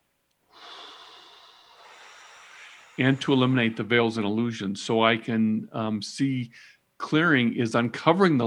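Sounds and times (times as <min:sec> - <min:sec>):
deep breath drawn in during a guided breathing exercise: 0:00.5 - 0:03.9
speech: 0:03.0 - 0:08.4.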